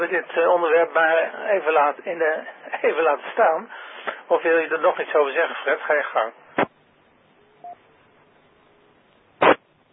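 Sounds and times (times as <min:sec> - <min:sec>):
speech: 0:00.0 - 0:06.7
harsh telephone tone burst: 0:07.4 - 0:09.0
faint electronic phone beep: 0:07.5 - 0:07.8.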